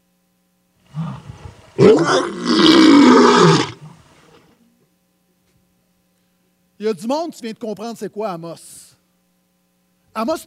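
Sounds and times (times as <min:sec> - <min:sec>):
lion roaring: 0:00.9 - 0:04.0
speech: 0:01.8 - 0:03.4, 0:06.8 - 0:08.9, 0:10.2 - 0:10.4.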